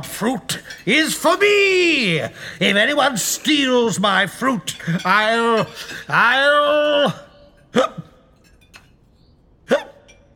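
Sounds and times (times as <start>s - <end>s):
speech: 0.0s - 8.1s
sharp loud hiccups: 9.7s - 10.1s.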